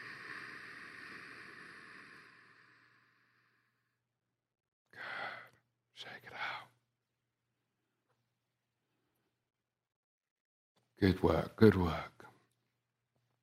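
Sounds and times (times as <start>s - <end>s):
deep breathing during a guided exercise session: 0.0s - 4.0s, 4.9s - 5.7s
speech: 11.0s - 12.1s.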